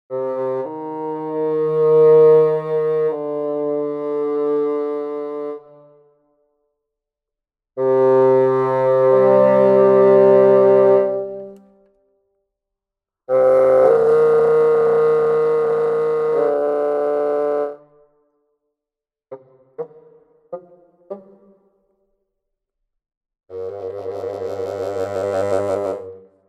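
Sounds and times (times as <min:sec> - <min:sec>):
symphonic woodwind bassoon: 0:00.1 - 0:06.1, 0:07.8 - 0:11.6, 0:13.3 - 0:17.8, 0:19.3 - 0:21.8, 0:23.5 - 0:26.2.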